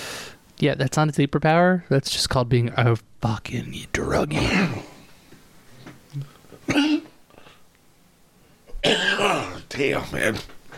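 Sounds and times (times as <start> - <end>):
speech: 0.6 - 5.0, 6.1 - 7.0, 9.8 - 10.6
harsh coughing to clear phlegm: 4.3 - 4.9, 6.6 - 7.2, 8.7 - 9.7.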